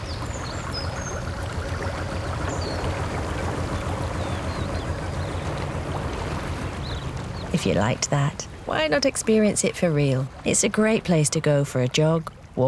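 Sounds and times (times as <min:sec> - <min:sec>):
faint bird chirps and calls: 0:00.0 - 0:08.6
canal water flowing and trickling: 0:00.0 - 0:12.6
speech: 0:07.6 - 0:12.6.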